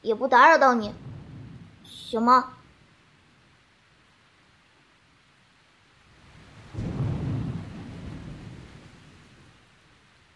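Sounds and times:
speech: 0.0 - 1.0, 1.9 - 2.6
steady hiss of rain: 0.0 - 10.3
deep thunder rumbling at night: 0.5 - 3.3, 6.1 - 9.9.

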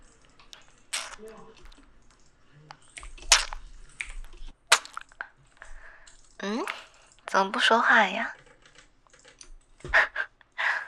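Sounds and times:
typing on a keyboard: 0.0 - 7.3, 8.2 - 9.9
wet sucking and smacking on a lollipop: 0.9 - 1.2, 2.9 - 5.2
speech: 1.2 - 2.0, 6.4 - 8.4.

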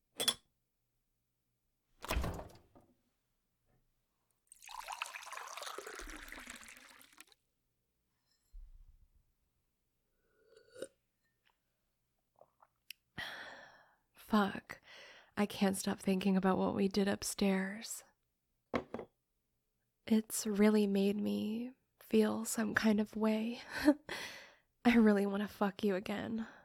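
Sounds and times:
water pouring into a glass in a kitchen: 4.5 - 7.4
speech: 14.3 - 14.7, 15.4 - 18.1, 20.1 - 26.6.

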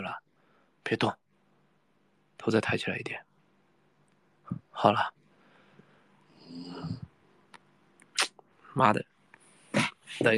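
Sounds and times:
speech: 0.0 - 0.2, 0.8 - 1.2, 2.4 - 3.3, 4.5 - 5.2, 8.8 - 9.1, 10.1 - 10.3
person snoring: 6.3 - 7.1.

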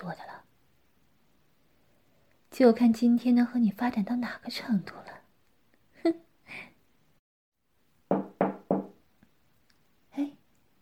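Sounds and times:
speech: 0.0 - 0.4, 2.6 - 5.2, 6.0 - 6.7
knocking on a door: 8.1 - 9.0.

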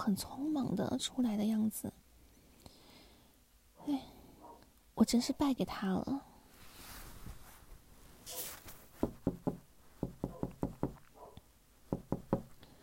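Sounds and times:
speech: 0.0 - 2.0, 3.9 - 4.1, 5.0 - 6.3
sharp rapping on a door: 9.0 - 11.0, 11.9 - 12.5.

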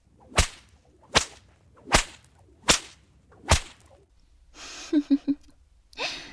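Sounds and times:
whip lashes cracking: 0.0 - 4.1.

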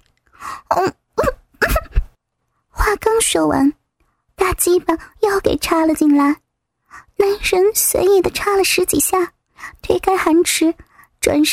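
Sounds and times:
speech: 0.7 - 1.0, 3.2 - 3.8, 4.6 - 11.5
person coughing while trying to speak: 1.2 - 2.1.

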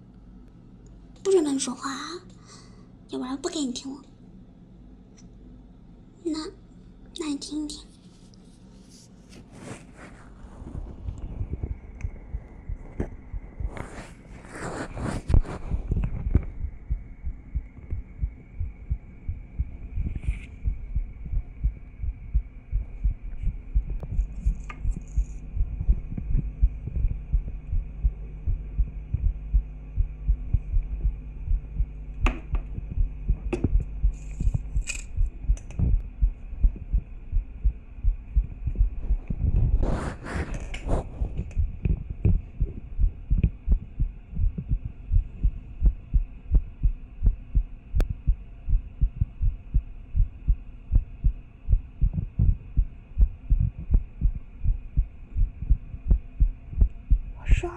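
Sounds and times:
speech: 1.2 - 4.1, 6.2 - 6.6, 7.2 - 7.9
scraping rustles: 7.9 - 11.0
low hum: 8.3 - 57.7
fast heartbeat: 10.3 - 57.7.

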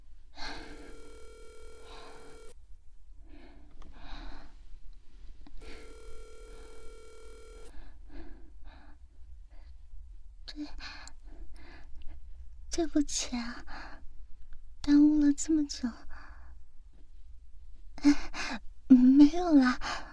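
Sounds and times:
phone ringing in long electronic bursts: 0.4 - 2.5, 5.6 - 7.7
speech: 10.6 - 10.9, 12.8 - 13.7, 14.9 - 16.0, 19.2 - 20.0.

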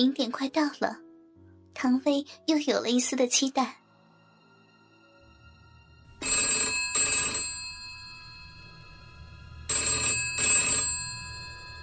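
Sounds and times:
speech: 0.0 - 1.0, 1.8 - 3.8
telephone ringing with a bright metallic bell: 6.2 - 8.8, 9.7 - 11.8.

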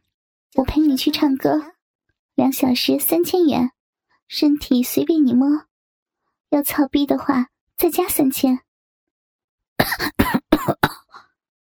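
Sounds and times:
speech: 0.5 - 1.7, 2.4 - 5.7, 6.5 - 8.6, 9.8 - 10.4
person coughing after choking on cigarette smoke: 9.8 - 11.2.

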